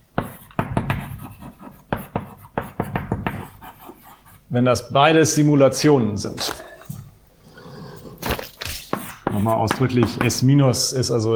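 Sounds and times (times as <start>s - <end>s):
handwriting taps and scratching strokes during a mathematics lecture: 0.1s - 4.5s, 8.6s - 10.4s
speech: 4.5s - 6.7s, 9.5s - 11.3s.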